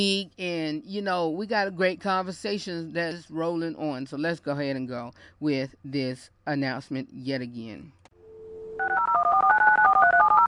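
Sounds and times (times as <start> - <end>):
speech: 0.0 - 8.0
steady telephone dial tone: 8.2 - 10.4.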